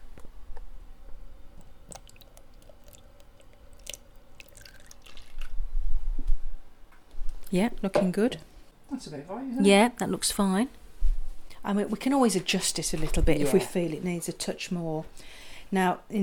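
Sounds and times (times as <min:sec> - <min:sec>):
two fluid ounces of milk poured into a bowl for a recipe: 0:01.9 - 0:05.5
speech: 0:07.5 - 0:10.8, 0:11.6 - 0:16.2.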